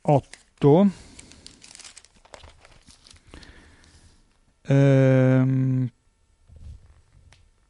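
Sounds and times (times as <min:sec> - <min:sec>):
man speaking: 0:00.0 - 0:01.0, 0:04.7 - 0:06.0
newspaper pages rustling and crinkling as they are turned: 0:01.1 - 0:03.6.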